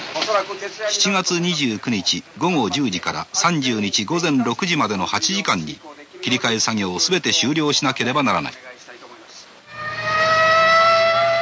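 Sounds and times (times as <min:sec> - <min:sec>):
speech: 0:00.3 - 0:08.7
civil defense siren signalling a halt of cars: 0:09.7 - 0:11.3.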